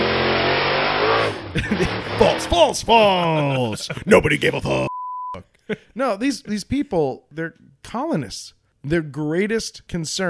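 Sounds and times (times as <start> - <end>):
monster truck engine revving: 0.0 - 3.3
laughter: 1.5 - 4.9, 5.5 - 6.0
speech: 1.5 - 10.2.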